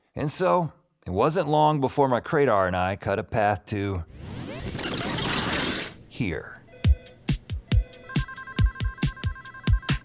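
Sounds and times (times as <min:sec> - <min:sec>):
speech: 0:00.2 - 0:04.9, 0:06.2 - 0:06.6
telephone ringing with electronic ringtone at emergency call center: 0:06.7 - 0:10.0.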